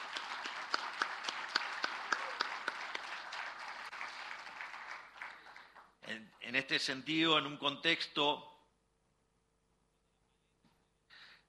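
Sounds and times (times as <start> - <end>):
audience applause: 0.0 - 6.0
speech: 6.5 - 8.5.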